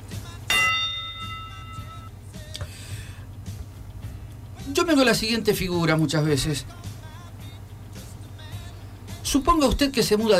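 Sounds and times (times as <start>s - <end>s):
bell tolling: 0.5s - 2.1s
speech: 4.8s - 6.8s, 9.4s - 10.3s.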